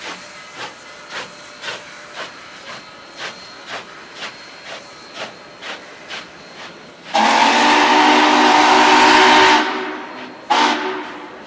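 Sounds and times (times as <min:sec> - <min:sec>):
steam locomotive chuffing in a steady rhythm: 0:00.0 - 0:11.4
steam locomotive whistle blasting: 0:07.0 - 0:11.4.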